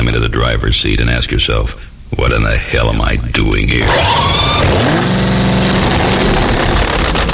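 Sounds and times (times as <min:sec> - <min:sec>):
speech: 0:00.1 - 0:05.3
2,000-horsepower supercharged drag racing engine revving: 0:03.8 - 0:07.3.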